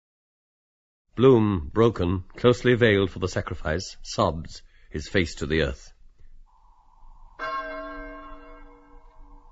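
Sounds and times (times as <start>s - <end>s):
speech: 1.2s - 5.9s
passing bell tolling: 6.5s - 9.4s.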